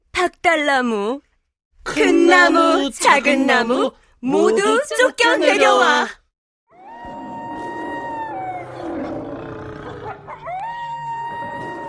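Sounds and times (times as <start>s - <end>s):
speech: 0.2s - 6.2s
tiger roaring: 6.8s - 11.8s.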